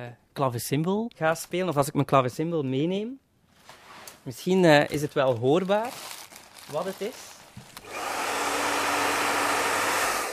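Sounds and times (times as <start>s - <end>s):
speech: 0.0s - 3.2s, 4.2s - 7.3s
hair dryer whirring with motor hum: 7.8s - 10.3s.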